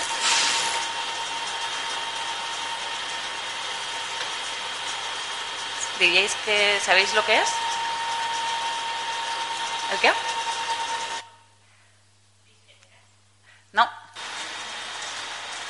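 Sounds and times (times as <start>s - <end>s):
small sanding machine sanding a mouse skull for a microscope sample: 0.0s - 11.3s
speech: 6.0s - 7.7s, 9.9s - 10.3s.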